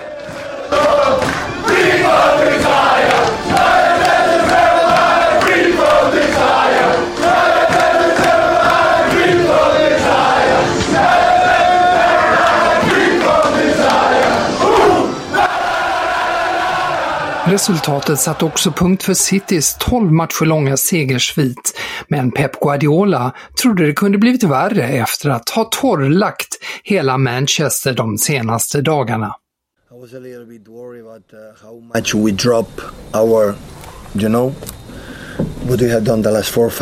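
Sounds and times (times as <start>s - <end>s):
football team shouting in an echoing locker room: 0.0s - 19.9s
football team clapping in an echoing locker room: 0.0s - 20.2s
football team chanting in an echoing locker room: 0.0s - 20.5s
speech: 17.6s - 29.4s, 30.0s - 34.8s, 35.7s - 36.8s.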